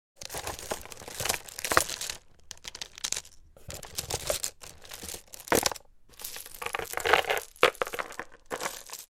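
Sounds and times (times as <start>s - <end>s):
jewelry clacking and rattling: 0.2s - 9.1s.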